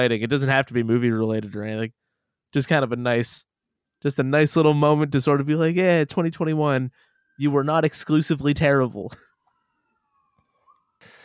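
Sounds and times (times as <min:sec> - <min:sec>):
speech: 0:00.0 - 0:09.3
emergency vehicle siren wailing: 0:05.5 - 0:11.2.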